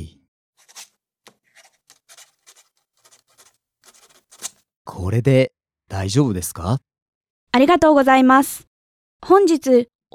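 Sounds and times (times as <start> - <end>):
pen scratching on paper filling in an application form: 0.6 - 4.6
speech: 4.9 - 6.9, 7.6 - 10.1.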